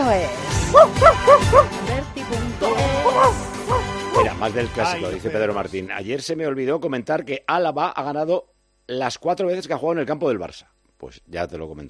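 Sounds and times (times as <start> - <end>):
speech: 0.1 - 3.5, 4.4 - 11.8
small dog barking happily: 0.7 - 1.7, 3.0 - 4.3.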